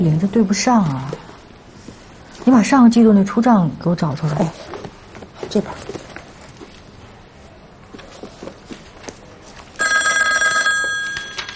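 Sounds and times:
speech: 0.0s - 1.2s, 2.4s - 4.7s, 5.5s - 6.0s
soft footsteps: 0.6s - 2.7s, 4.2s - 9.8s
telephone bell ringing with a metallic trill: 9.8s - 11.5s.

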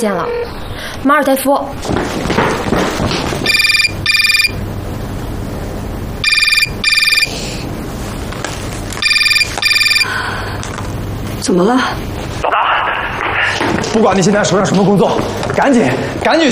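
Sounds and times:
speech: 0.0s - 3.2s, 11.4s - 12.7s, 13.5s - 16.4s
murky hum: 0.0s - 16.4s
telephone ringing in a double-burst pattern: 3.4s - 4.6s, 6.2s - 7.4s, 9.0s - 10.2s.

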